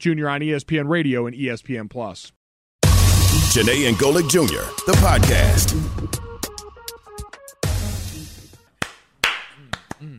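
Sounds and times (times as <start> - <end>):
speech: 0.0 - 2.4, 3.5 - 6.2
hands clapping: 8.5 - 10.1.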